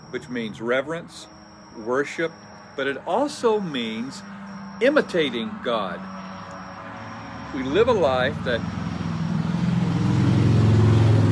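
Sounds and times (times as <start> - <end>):
speech: 0.1 - 6.2, 7.5 - 8.8
heavy truck rumbling past outside along the road: 2.8 - 11.2.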